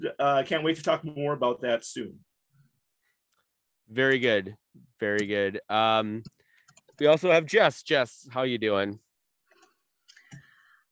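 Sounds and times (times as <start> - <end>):
speech: 0.0 - 2.3, 3.9 - 6.4, 7.0 - 9.0
quiet keyboard typing: 6.2 - 7.1.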